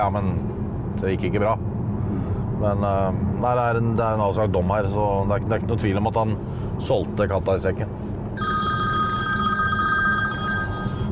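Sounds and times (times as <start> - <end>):
speech: 0.0 - 1.8, 2.6 - 8.5
telephone ringing with a trilling electronic bell tone: 8.4 - 11.1.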